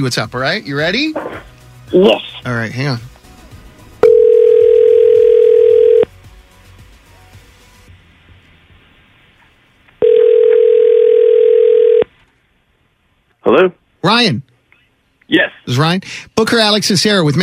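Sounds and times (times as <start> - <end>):
speech: 0.0 - 3.1, 13.6 - 14.5, 15.3 - 17.4
outgoing phone call ringback tones: 4.0 - 6.1, 10.0 - 12.1.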